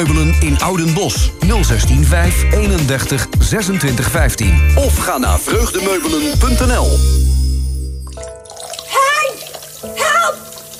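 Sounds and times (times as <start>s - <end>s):
speech: 0.0s - 7.3s
water gushing and splashing across a flooded kitchen floor from a clogged drain: 8.1s - 10.7s.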